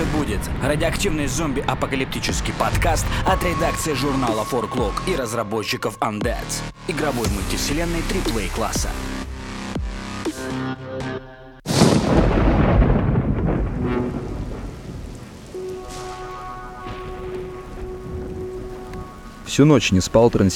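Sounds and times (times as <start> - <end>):
steady rain pattering in a night thunderstorm: 0.0 - 5.0, 11.7 - 20.5
thunderclap and deep thunder rumble in a night thunderstorm: 0.0 - 8.0, 11.7 - 20.5
speech: 0.3 - 9.2, 19.6 - 20.5.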